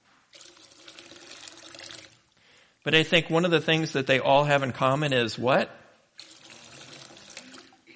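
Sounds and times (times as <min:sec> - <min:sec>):
water splashing and trickling into a baptismal font: 0:00.3 - 0:02.3, 0:06.2 - 0:07.9
speech: 0:02.8 - 0:05.8.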